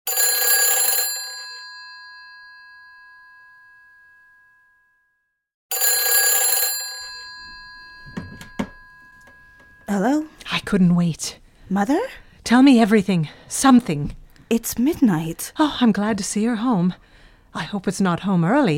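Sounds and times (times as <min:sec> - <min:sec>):
old-style telephone bell ringing: 0:00.1 - 0:04.8, 0:05.7 - 0:10.3
clattering knocks of telephone handset being lifted: 0:07.4 - 0:09.9
speech: 0:09.9 - 0:18.7.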